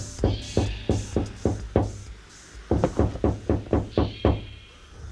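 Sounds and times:
rapid sharp knocking on the glazed front door of a villa: 0.3s - 2.1s, 2.6s - 4.5s.

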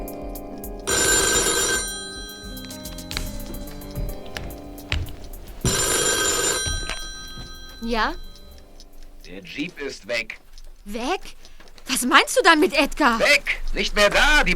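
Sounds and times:
old-style telephone bell ringing: 0.9s - 4.0s, 5.6s - 8.8s
speech: 7.9s - 8.2s, 9.3s - 14.5s.

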